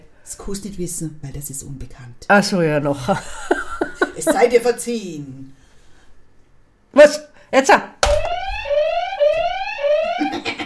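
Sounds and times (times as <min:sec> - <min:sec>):
speech: 0:00.3 - 0:03.6, 0:04.2 - 0:05.6, 0:06.9 - 0:07.9
laughter: 0:03.1 - 0:04.6
loud electronic alarm siren sweeping upward in pitch: 0:08.0 - 0:10.5.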